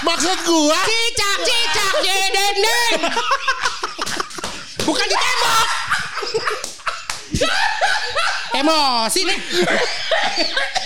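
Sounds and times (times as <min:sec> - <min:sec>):
speech: 0:00.0 - 0:04.1, 0:04.8 - 0:06.7, 0:08.6 - 0:10.8
excited voices: 0:00.0 - 0:10.0
people laughing: 0:00.0 - 0:10.8
sharp slaps: 0:04.0 - 0:05.1, 0:06.5 - 0:07.5.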